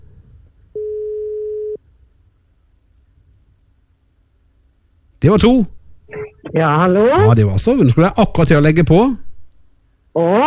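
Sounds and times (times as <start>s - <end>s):
telephone ringing tone on a call: 0.8s - 1.8s
speech: 5.2s - 5.8s, 6.5s - 9.2s, 10.1s - 10.4s.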